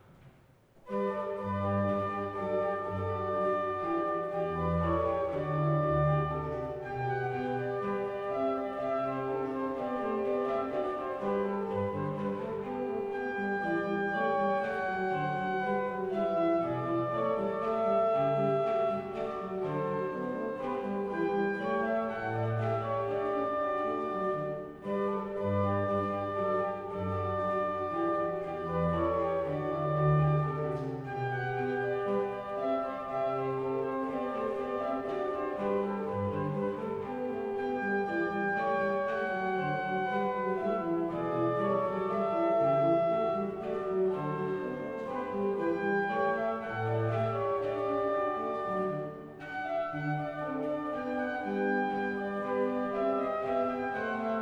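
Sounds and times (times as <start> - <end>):
organ playing a classical variation: 0.0 - 54.4.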